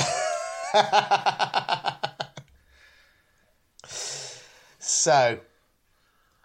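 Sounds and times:
laughter: 0.0s - 2.4s
speech: 0.7s - 1.7s, 5.0s - 5.5s
heavy breathing after running up stairs: 2.6s - 4.8s.

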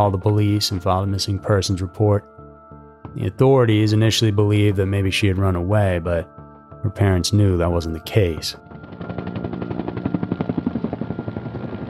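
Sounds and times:
speech: 0.0s - 2.4s, 3.1s - 8.7s
helicopter rotor beating over the trees: 8.7s - 11.8s.

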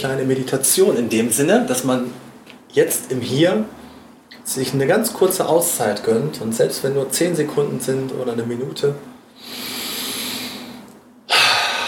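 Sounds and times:
speech: 0.0s - 3.8s, 4.5s - 9.6s
person taking a deep breath: 9.3s - 11.8s.

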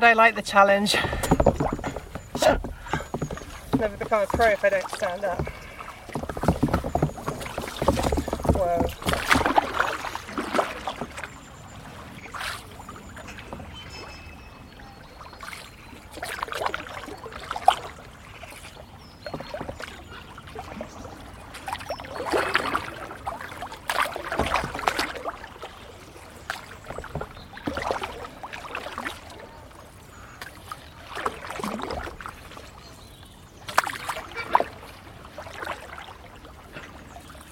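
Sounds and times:
speech: 0.0s - 1.6s, 2.4s - 2.7s, 3.8s - 5.6s
flowing river water: 0.0s - 37.5s
paddle strokes splashing from a paddleboard on a river: 0.6s - 37.5s.

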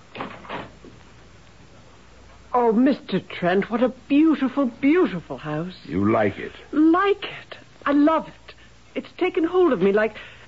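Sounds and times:
door opening: 0.1s - 0.8s
speech: 2.6s - 10.4s.

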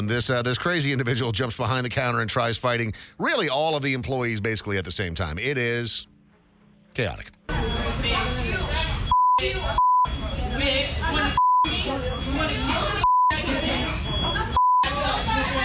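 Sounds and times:
speech: 0.0s - 6.1s, 7.0s - 8.4s, 9.4s - 9.8s
indistinct chatter and commotion: 7.5s - 15.6s
electronic fryer timer beeps: 9.0s - 10.3s, 11.3s - 15.0s.

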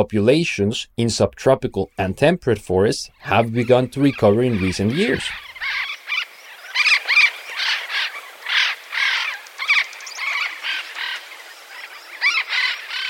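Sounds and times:
speech: 0.0s - 5.9s
Andean parrot harsh raspy calls: 3.2s - 13.0s.

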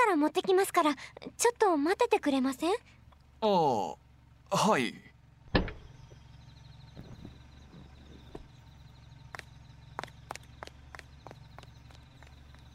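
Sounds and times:
car engine idling: 0.0s - 12.7s
speech: 0.1s - 5.1s
car door opening: 5.5s - 6.2s, 6.9s - 8.6s
light footsteps walking away outside the vehicle: 6.9s - 12.7s.

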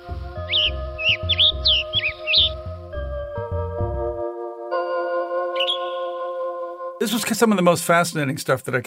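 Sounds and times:
low rhythmic musical drone: 0.0s - 7.0s
western tanager chirping calls: 0.4s - 2.8s, 5.6s - 6.0s
speech: 7.0s - 8.8s.

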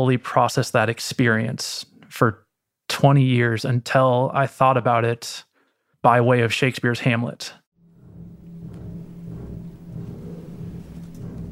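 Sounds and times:
speech: 0.0s - 2.4s, 3.0s - 7.6s
deep booming bass piano chords: 7.8s - 11.5s.

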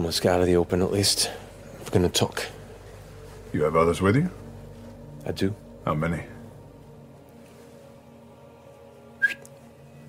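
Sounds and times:
low steady hum: 0.0s - 10.0s
speech: 0.1s - 2.6s, 3.5s - 4.4s, 5.2s - 6.3s
man whistling: 9.2s - 9.5s.

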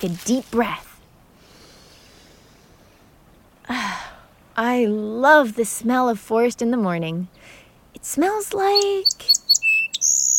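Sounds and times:
speech: 0.0s - 0.9s, 4.6s - 9.4s
sparrow singing: 8.3s - 10.3s.

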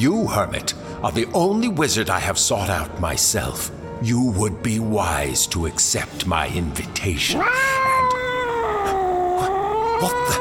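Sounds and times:
speech: 0.0s - 8.0s, 10.0s - 10.3s
cat yowling inside a bag: 7.3s - 10.3s.

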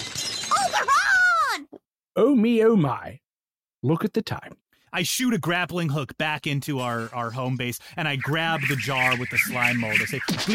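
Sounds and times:
voice imitating a window shattering: 0.0s - 1.6s
speech: 0.7s - 1.1s, 2.2s - 3.2s, 3.8s - 10.5s.

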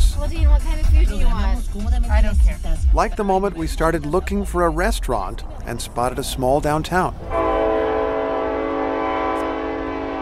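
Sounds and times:
low rumble of a moving train: 0.0s - 10.2s
speech: 0.3s - 7.4s
train horn blaring at an old railroad stop in Augusta Kansas: 7.3s - 10.2s.

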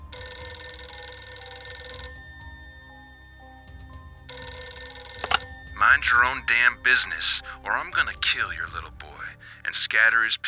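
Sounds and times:
old-fashioned telephone bell ringing at a town minister's home: 0.0s - 8.1s
speech: 5.8s - 9.1s, 9.7s - 10.4s.

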